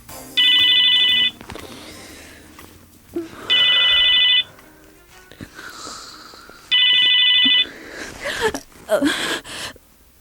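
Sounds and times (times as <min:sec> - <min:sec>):
mobile phone ringing shrilly with bright electronic tone: 0:00.4 - 0:01.4, 0:03.5 - 0:04.5, 0:06.7 - 0:07.7
rustling breathy movement of a sleeper: 0:01.2 - 0:03.0, 0:03.6 - 0:09.0.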